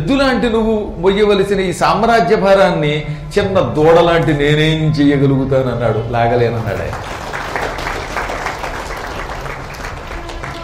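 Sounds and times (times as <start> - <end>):
speech: 0.1 - 7.2
audience clapping: 6.6 - 10.6.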